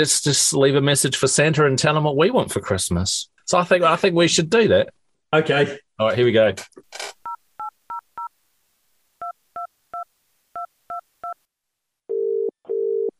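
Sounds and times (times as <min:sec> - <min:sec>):
speech: 0:00.0 - 0:07.2
phone ringing tones as the call connects: 0:12.1 - 0:13.1.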